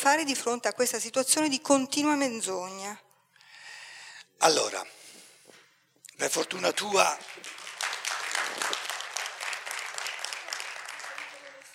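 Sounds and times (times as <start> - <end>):
speech: 0.0 - 3.1, 4.4 - 5.0, 6.2 - 7.6
audience applause: 7.0 - 11.7.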